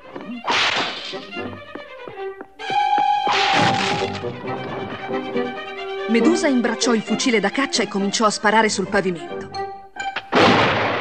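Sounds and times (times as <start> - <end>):
busy tonal musical score: 0.0 - 10.4
broom swung at mice on a floor, thwacks and thuds: 0.4 - 1.3, 3.3 - 4.3
speech: 1.1 - 1.8, 6.1 - 9.4.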